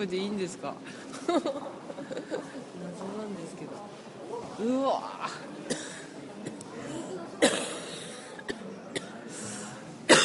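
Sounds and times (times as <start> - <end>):
speech: 0.0 - 5.5
laughter: 1.1 - 2.7
person coughing and choking: 5.7 - 9.1, 10.1 - 10.2.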